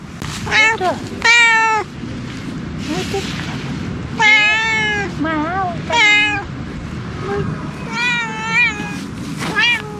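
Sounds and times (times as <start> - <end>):
low steady rumble: 0.0 - 9.9
cat meowing with drawn-out wavering cries: 0.4 - 1.9, 4.1 - 5.2, 5.8 - 6.5, 7.7 - 9.9.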